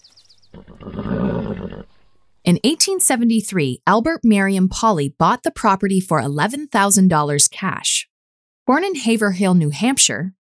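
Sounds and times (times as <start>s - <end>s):
horse neighing: 0.5s - 2.2s
speech: 2.5s - 8.1s, 8.7s - 10.4s.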